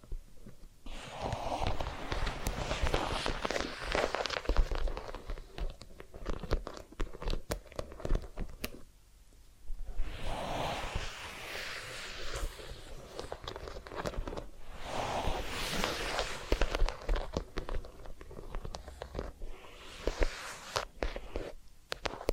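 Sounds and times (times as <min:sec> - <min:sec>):
crackly rubbing and scratching of ear cleaning and massage: 0:00.0 - 0:08.9, 0:09.8 - 0:22.3.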